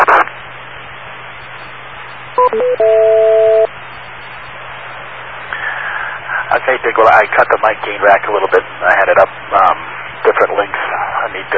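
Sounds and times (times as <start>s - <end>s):
steady radio hiss: 0.0s - 2.3s, 3.2s - 11.5s
speech: 2.4s - 3.4s, 6.7s - 9.8s, 10.4s - 11.5s
cell phone dual-tone dialing beeps into a radio repeater: 2.4s - 3.7s.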